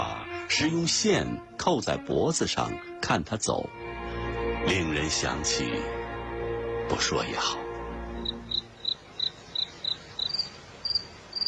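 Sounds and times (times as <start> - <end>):
quiet hiss: 0.0 - 11.4
speech: 0.5 - 3.8, 4.6 - 6.0, 6.9 - 7.6
cricket chirping: 8.2 - 11.4.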